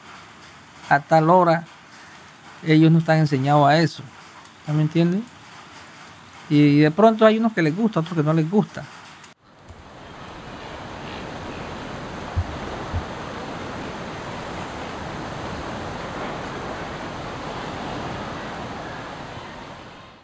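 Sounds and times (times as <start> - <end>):
soft wind noise: 0.0 - 20.2
speech: 0.9 - 1.7, 2.6 - 5.3, 6.5 - 9.0
surf washing on a beach: 9.5 - 20.2
brief low thumps: 12.3 - 13.2.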